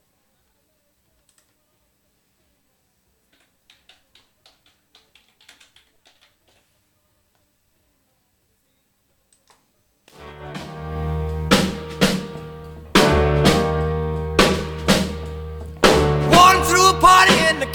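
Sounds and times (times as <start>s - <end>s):
1950s rock and roll recording: 10.2s - 17.7s.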